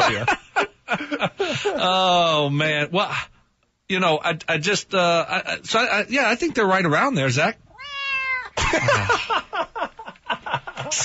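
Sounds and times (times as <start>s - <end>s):
laughter: 0.0s - 1.7s, 8.6s - 11.0s
speech: 0.1s - 0.4s, 1.2s - 3.3s, 3.9s - 7.6s, 8.7s - 9.6s
cat meowing: 7.7s - 8.6s.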